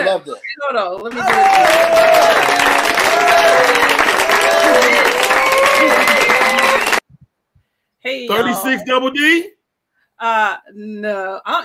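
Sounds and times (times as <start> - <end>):
speech: 0.2 - 2.8, 8.0 - 9.6, 10.2 - 11.6
applause: 1.1 - 7.0
crowd cheering and whooping: 1.1 - 7.0.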